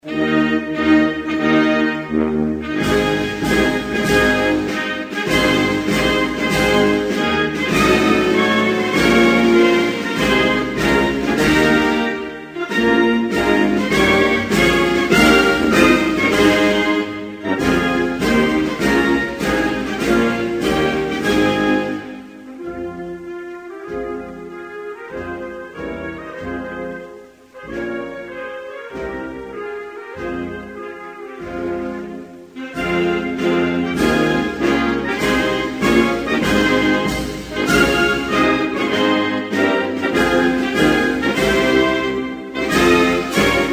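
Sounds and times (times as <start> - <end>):
national anthem: 0.0 - 43.7.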